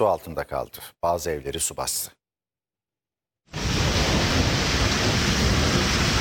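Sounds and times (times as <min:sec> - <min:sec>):
speech: 0:00.0 - 0:02.2
heavy rain downpour during flooding in southeastern Anatolia: 0:03.5 - 0:06.1.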